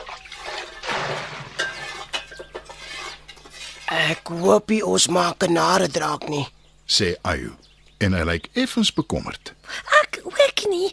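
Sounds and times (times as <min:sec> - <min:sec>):
water pouring into a pot of old herbs in a garden: 0:00.0 - 0:03.9
pot clinking and knocking: 0:01.4 - 0:03.4
speech: 0:03.9 - 0:09.9.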